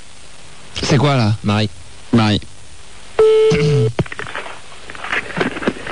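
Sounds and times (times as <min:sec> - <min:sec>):
speech: 0:00.8 - 0:02.5
telephone steady tone: 0:03.2 - 0:04.0
rustling and shuffling: 0:04.0 - 0:05.9.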